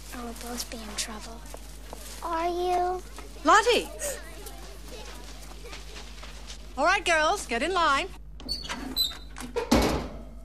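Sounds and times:
speech: 0.2 - 4.3, 6.8 - 8.6
oven door squeak: 8.4 - 10.0
oven door clunk with a rushing noisy tail: 8.8 - 10.3.

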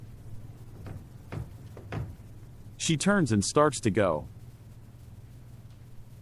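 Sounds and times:
large mirror-doored wardrobe doors tugged, knocking and rattling: 0.0 - 2.8
steady low hum: 0.0 - 6.1
speech: 2.8 - 4.4.

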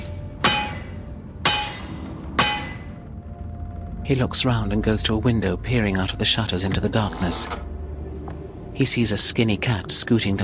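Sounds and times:
blacksmith's hammer striking red-hot steel: 0.0 - 3.0
speech: 4.1 - 7.7, 8.8 - 10.4.

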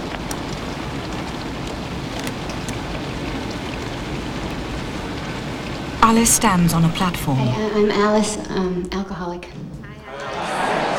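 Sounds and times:
rain pattering on a car windscreen: 0.0 - 7.9
speech: 6.1 - 9.8
laughter: 10.0 - 10.9.

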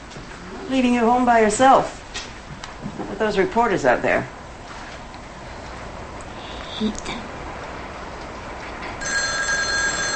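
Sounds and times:
speech: 0.7 - 2.0, 3.2 - 4.4, 6.8 - 7.2
telephone ringing with an electronic tone: 9.0 - 10.1.

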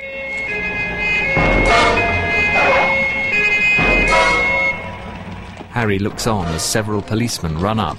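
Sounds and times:
police car siren wailing: 0.0 - 5.4
police car screeching to a halt: 0.0 - 7.4
low police car engine rumble: 0.0 - 7.9
speech: 5.8 - 7.9.

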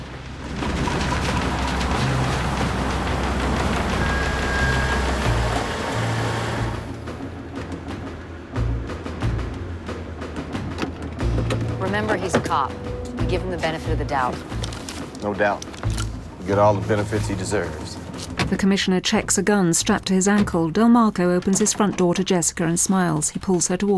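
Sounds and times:
steady rain at night outside a home: 0.0 - 8.2
low engine rumble of a car pulling up: 0.0 - 18.6
speech: 12.0 - 15.7, 16.4 - 23.9.

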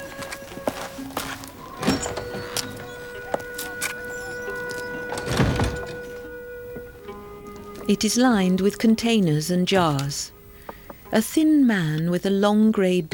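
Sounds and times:
shop door opening: 0.0 - 8.9
speech: 7.9 - 10.4, 11.1 - 13.1.

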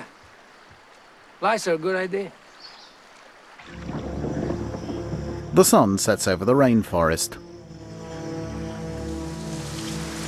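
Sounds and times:
rain pattering onto open water: 0.0 - 6.5, 9.1 - 10.2
speech: 1.4 - 2.4, 5.6 - 7.5.

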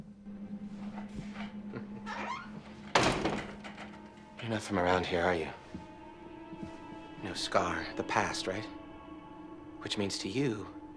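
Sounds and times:
low steady hum: 0.0 - 10.9
office door creaking with squeaking hinges: 1.4 - 4.8
office door shutting with a sharp solid thud: 2.8 - 4.0
speech: 4.5 - 5.7, 7.2 - 8.8, 9.8 - 10.8.

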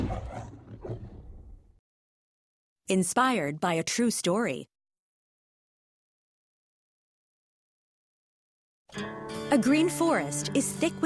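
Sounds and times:
lion roaring in a film studio logo: 0.0 - 1.7
speech: 2.9 - 4.7, 9.0 - 11.0.

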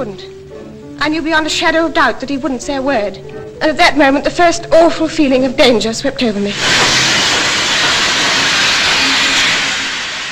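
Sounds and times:
speech: 0.0 - 0.4, 1.0 - 7.2
steam train at a standstill letting out escaping steam: 6.5 - 10.3.

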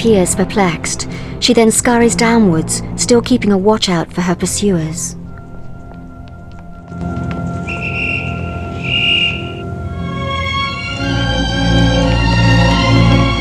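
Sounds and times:
speech: 0.0 - 5.2
layered sustained tones: 0.0 - 13.3
rising low rumble: 0.0 - 13.3
shrill whistle blasts: 7.6 - 9.7.

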